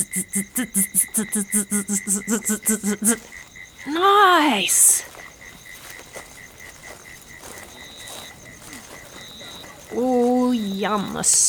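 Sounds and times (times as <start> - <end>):
laughter: 0.0 - 3.4
speech: 0.0 - 5.1, 10.0 - 11.4
human voice imitating cricket chirping at a quick pace: 0.0 - 11.4.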